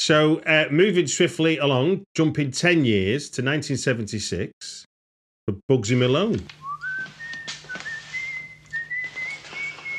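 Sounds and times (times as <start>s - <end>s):
speech: 0.0s - 4.9s, 5.5s - 6.6s
person whistling a wandering tune: 6.6s - 9.9s.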